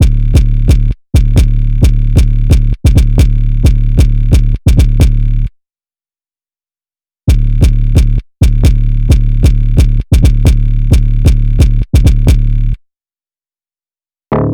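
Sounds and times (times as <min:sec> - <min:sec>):
bass melody loop in D minor at 132 BPM: 0:00.0 - 0:05.5, 0:07.3 - 0:12.8, 0:14.3 - 0:14.5.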